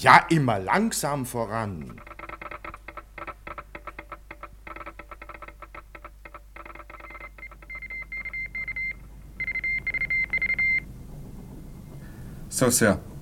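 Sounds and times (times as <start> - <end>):
speech: 0.0 - 2.1, 12.6 - 13.1
radio telegraph beeps confirming receipt of a message: 6.6 - 10.9.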